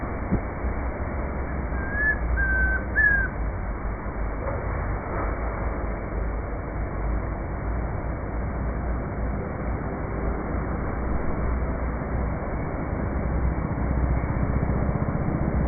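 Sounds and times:
low rumbling background noise: 0:00.0 - 0:15.6
chestnut-crowned antpitta Grallaria ruficapilla whistling a three-note call on a farm: 0:01.7 - 0:03.3.

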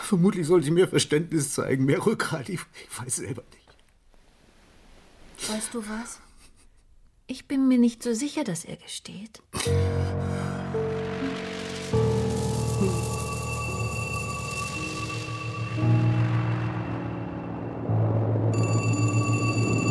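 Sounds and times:
speech: 0:00.1 - 0:03.6, 0:05.4 - 0:06.2, 0:07.3 - 0:10.3
steady droning tones: 0:10.2 - 0:19.8
telephone ringing with a bright electronic tone: 0:12.0 - 0:16.0, 0:18.5 - 0:19.8.

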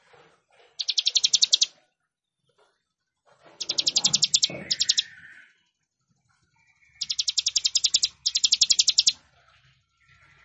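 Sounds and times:
Plain prinia song of dry, buzzy, clicking notes: 0:00.7 - 0:01.8, 0:03.6 - 0:05.8, 0:06.4 - 0:10.4.

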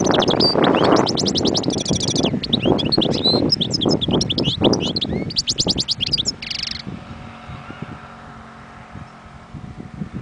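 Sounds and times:
wild European goldfinch high tinkling twitters ending in rasping buzz: 0:00.0 - 0:06.9.

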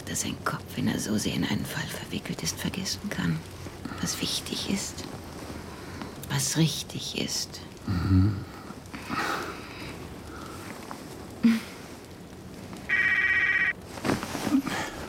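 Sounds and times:
speech: 0:00.1 - 0:05.2, 0:06.3 - 0:09.2
soft rustling: 0:00.3 - 0:07.8, 0:08.7 - 0:15.0
breathy noises: 0:03.2 - 0:06.3, 0:07.7 - 0:12.2, 0:12.9 - 0:15.0
mobile phone ringtone: 0:12.9 - 0:13.7.

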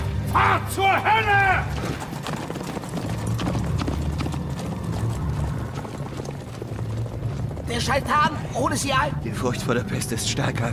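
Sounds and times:
speech: 0:00.8 - 0:02.2, 0:07.7 - 0:10.7
horse galloping away: 0:01.6 - 0:09.2.

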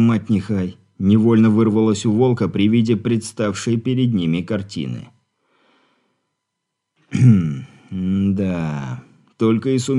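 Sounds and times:
speech: 0:00.0 - 0:05.1, 0:07.1 - 0:09.9
man clearing a scratchy irritated throat: 0:07.0 - 0:07.9.

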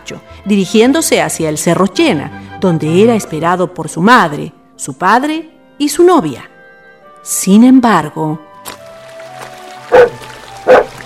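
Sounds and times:
speech: 0:00.1 - 0:06.5, 0:07.2 - 0:08.8, 0:09.9 - 0:10.8
dog barking: 0:09.9 - 0:11.0.

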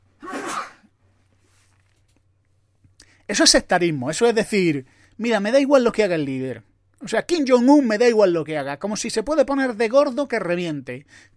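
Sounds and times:
sneeze: 0:00.2 - 0:00.9
speech: 0:03.3 - 0:11.3.

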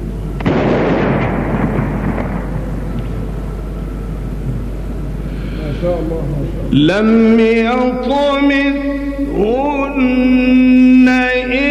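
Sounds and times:
cannon blast signalling the start of the Ramadan fast at dawn in Cairo: 0:00.4 - 0:03.3
speech: 0:05.8 - 0:11.6.

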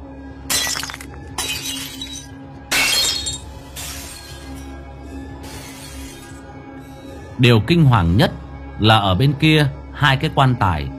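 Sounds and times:
glass objects from an altar breaking on the floor: 0:00.5 - 0:04.7
glass shards clattering on the floor: 0:00.5 - 0:04.8
speech: 0:07.4 - 0:10.9.

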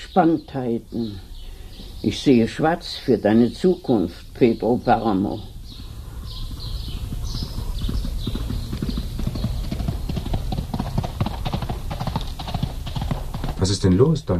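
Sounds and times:
speech: 0:00.2 - 0:01.3, 0:02.0 - 0:05.5, 0:13.8 - 0:14.3
horse galloping: 0:06.1 - 0:13.8.

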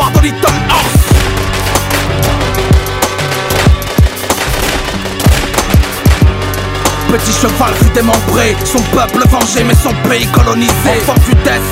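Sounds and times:
speech: 0:00.2 - 0:00.5, 0:07.1 - 0:11.6
gunfire bursts: 0:01.0 - 0:07.2.

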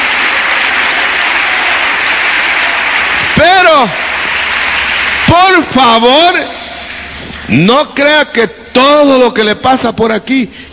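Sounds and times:
church congregation applauding: 0:00.0 - 0:07.1
speech: 0:03.7 - 0:04.0, 0:05.3 - 0:06.6, 0:07.5 - 0:10.7.

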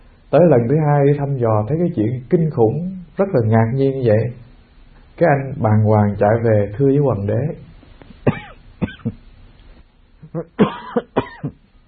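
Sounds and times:
speech: 0:00.3 - 0:04.4, 0:05.2 - 0:07.7, 0:10.3 - 0:10.7
man coughing: 0:08.2 - 0:09.2, 0:10.2 - 0:11.6.

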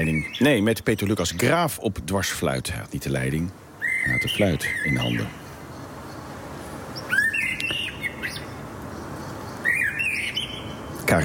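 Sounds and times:
early blackbird singing in a street: 0:00.0 - 0:01.6, 0:03.8 - 0:06.4, 0:07.0 - 0:11.2
speech: 0:00.0 - 0:05.4
steady hiss: 0:00.0 - 0:11.2.

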